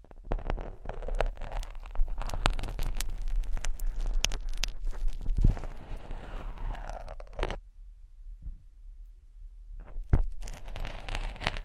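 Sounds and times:
ears being scratched slowly: 0.3s - 7.6s, 10.1s - 11.6s.

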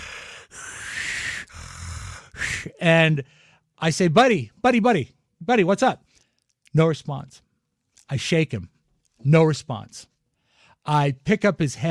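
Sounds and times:
voice imitating strained raspy breathing: 0.0s - 2.8s
speech: 2.6s - 6.0s, 6.7s - 7.4s, 8.1s - 10.1s, 10.8s - 11.8s.

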